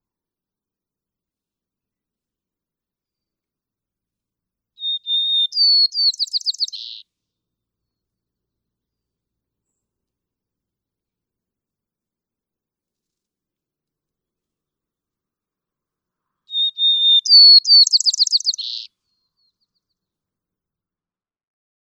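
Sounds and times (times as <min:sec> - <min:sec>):
white-crowned sparrow song: 0:04.8 - 0:07.0, 0:16.5 - 0:19.8.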